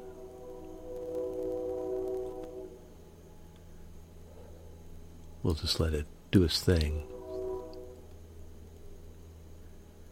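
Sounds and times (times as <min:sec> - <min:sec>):
train horn long chord-like blast: 0:00.0 - 0:02.9, 0:06.8 - 0:08.2
speech: 0:05.5 - 0:07.2.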